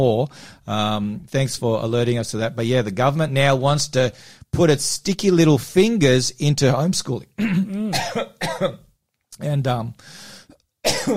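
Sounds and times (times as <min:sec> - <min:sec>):
speech: 0:00.0 - 0:08.8, 0:09.4 - 0:11.1
harsh hacking coughing fit: 0:07.4 - 0:08.8, 0:10.8 - 0:11.1
raspy breath: 0:10.0 - 0:10.6.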